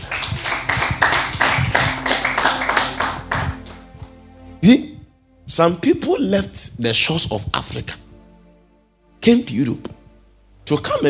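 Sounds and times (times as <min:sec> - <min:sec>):
audience clapping hands in a rhythmic beat: 0:00.0 - 0:04.2
speech: 0:04.6 - 0:04.9, 0:05.5 - 0:08.0, 0:09.2 - 0:10.0, 0:10.7 - 0:11.0.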